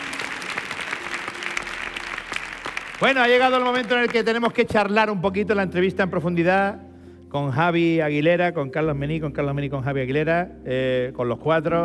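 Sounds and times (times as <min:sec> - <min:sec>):
audience applause: 0:00.0 - 0:04.8
speech: 0:03.0 - 0:11.8.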